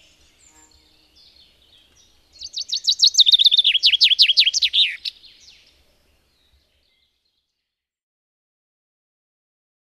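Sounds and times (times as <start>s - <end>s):
Common chaffinch song: 0.0s - 7.9s.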